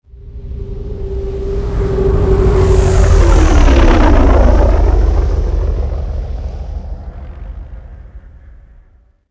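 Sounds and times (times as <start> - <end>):
ship passing by: 0.1 - 9.0.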